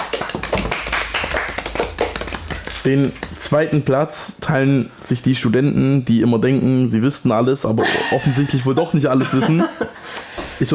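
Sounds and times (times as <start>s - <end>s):
small group clapping for third place in a quiz: 0.0s - 3.8s
speech: 2.8s - 10.7s
laughter: 7.8s - 10.1s.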